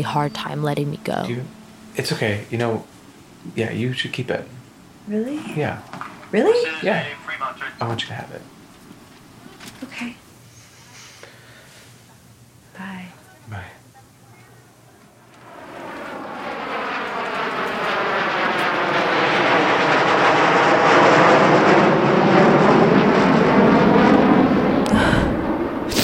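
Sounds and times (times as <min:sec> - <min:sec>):
airplane engine roaring taking off: 0:00.0 - 0:08.5, 0:15.1 - 0:26.0
speech: 0:00.0 - 0:08.6, 0:09.8 - 0:10.2.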